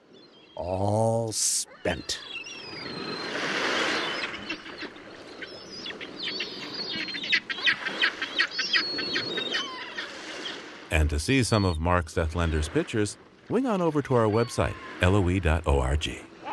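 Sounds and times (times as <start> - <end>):
blackback gulls and herring gulls calling: 0.0 - 16.5
low ambient noise: 0.6 - 2.3, 10.9 - 16.5
speech: 0.6 - 2.4, 10.9 - 16.3.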